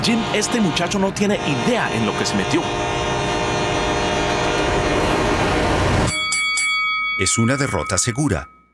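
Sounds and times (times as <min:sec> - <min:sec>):
speech: 0:00.0 - 0:03.0, 0:07.2 - 0:08.6
heavy freight train rumbling past at range: 0:00.0 - 0:06.1.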